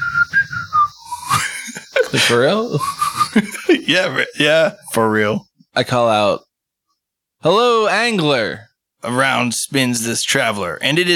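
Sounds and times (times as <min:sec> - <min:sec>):
person whistling a brief bright tune: 0:00.0 - 0:01.8, 0:02.7 - 0:03.4
laughter: 0:01.2 - 0:04.7
speech: 0:02.1 - 0:06.5, 0:07.4 - 0:11.1.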